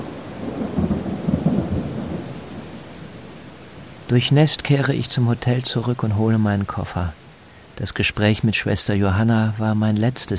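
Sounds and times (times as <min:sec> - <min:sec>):
deep rolling thunder over a mountain village: 0:00.0 - 0:02.8
pouring rain in a summer thunderstorm over a mountain village: 0:00.0 - 0:10.3
speech: 0:04.1 - 0:07.2, 0:07.8 - 0:10.3.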